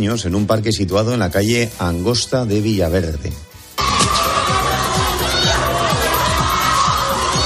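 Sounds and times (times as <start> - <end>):
speech: 0.0 - 3.5
crowd of people shouting and yelling: 3.8 - 7.4
loud background music with a steady thumping bass beat: 3.8 - 7.4.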